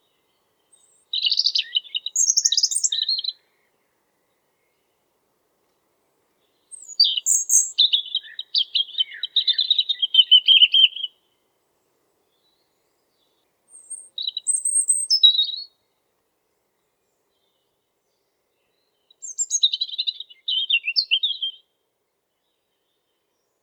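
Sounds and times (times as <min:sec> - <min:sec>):
European robin singing high liquid twitters and sweet trills: 0:00.0 - 0:03.7, 0:06.4 - 0:11.2, 0:12.3 - 0:15.8, 0:17.1 - 0:21.8.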